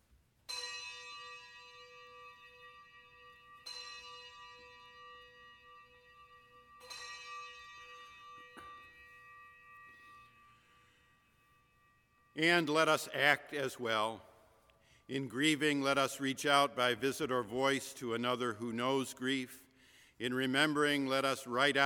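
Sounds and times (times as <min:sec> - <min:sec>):
bell being struck: 0:00.5 - 0:11.1
speech: 0:12.4 - 0:14.3, 0:15.1 - 0:19.6, 0:20.2 - 0:21.8.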